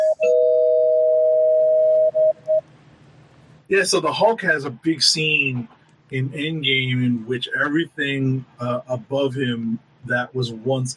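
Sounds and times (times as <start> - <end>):
electronic bell tone rung as a spoiler warning: 0.0 - 2.6
speech: 3.7 - 10.9.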